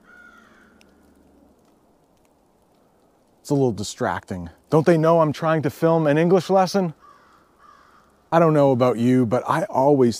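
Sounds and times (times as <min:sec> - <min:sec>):
crows cawing: 0:00.0 - 0:03.3, 0:06.8 - 0:08.4
outdoor noise: 0:00.0 - 0:10.1
speech: 0:03.5 - 0:07.1, 0:08.3 - 0:10.1.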